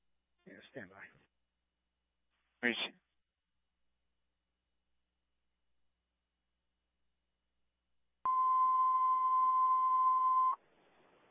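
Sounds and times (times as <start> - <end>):
speech: 0.5 - 1.3, 2.6 - 3.0
fire department dispatch cancellation tone: 8.3 - 10.6.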